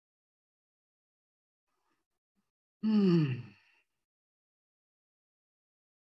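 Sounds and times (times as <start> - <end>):
deep breath let out as a voiced sigh during a guided meditation: 2.8 - 3.7.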